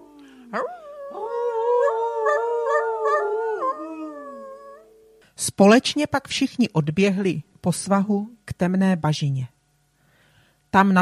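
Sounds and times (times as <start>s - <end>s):
wolves howling in a layered chorus: 0.0s - 4.9s
speech: 0.5s - 1.4s, 5.4s - 9.6s, 10.7s - 10.9s.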